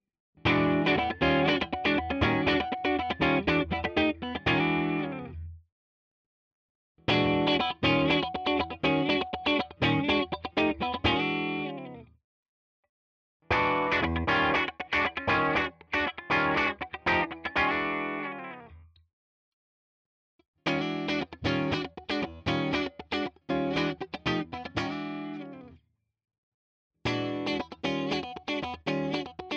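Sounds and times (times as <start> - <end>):
clean funk guitar in all pickup positions: 0.5 - 5.5, 7.1 - 12.0, 13.5 - 18.7, 20.7 - 25.7, 27.1 - 29.5.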